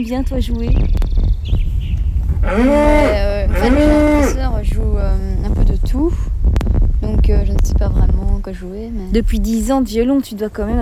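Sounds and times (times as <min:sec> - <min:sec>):
speech: 0:00.0 - 0:01.6, 0:02.4 - 0:06.3, 0:07.2 - 0:10.8
low rumble: 0:00.0 - 0:10.8
cow mooing: 0:02.3 - 0:04.5.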